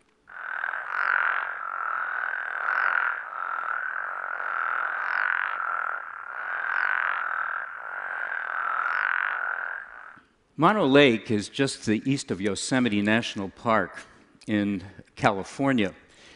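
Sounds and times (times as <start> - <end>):
frog chorus: 0.0 - 10.2
speech: 10.6 - 16.0.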